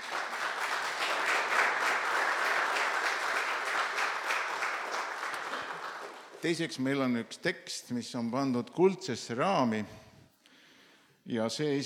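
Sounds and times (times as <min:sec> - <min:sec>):
audience applause: 0:00.0 - 0:06.4
speech: 0:06.4 - 0:10.0, 0:11.3 - 0:11.8.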